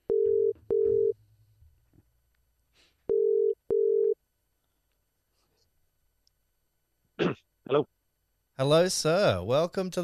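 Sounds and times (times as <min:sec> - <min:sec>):
phone ringing on the line with electronic double-ring tones: 0:00.1 - 0:01.1, 0:03.1 - 0:04.2
speech: 0:07.7 - 0:07.9, 0:08.6 - 0:10.0.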